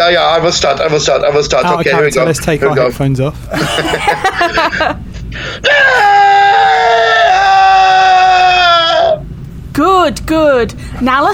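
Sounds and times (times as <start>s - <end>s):
speech: 0.1s - 8.1s, 9.8s - 11.3s
laughter: 3.5s - 5.3s
people screaming together: 5.6s - 9.2s.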